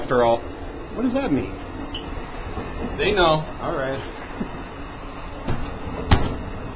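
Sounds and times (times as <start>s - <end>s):
low rumbling background: 0.0s - 6.7s
speech: 0.1s - 1.6s, 2.9s - 4.2s
man kicking open a train car door with his foot in Maryland: 5.4s - 6.6s.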